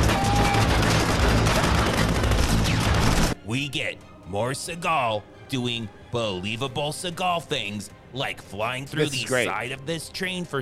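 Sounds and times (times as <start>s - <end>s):
dense gunfire in an action film scene: 0.0s - 3.4s
speech: 3.7s - 10.6s.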